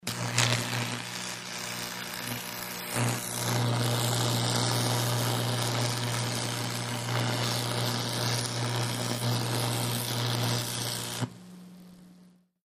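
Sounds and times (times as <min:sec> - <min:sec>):
electric arc welding cutting crackle: 0:00.0 - 0:12.5.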